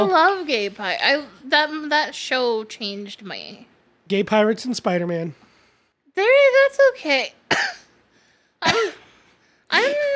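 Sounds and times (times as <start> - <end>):
speech: 0.0 - 5.4, 6.2 - 7.8, 8.6 - 9.0, 9.7 - 10.1
small short coughs: 7.5 - 8.0, 8.6 - 9.2.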